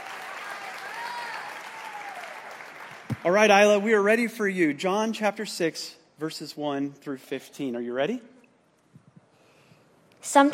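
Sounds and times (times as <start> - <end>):
audience applause: 0.0 - 3.5
speech: 3.2 - 8.3, 10.2 - 10.5.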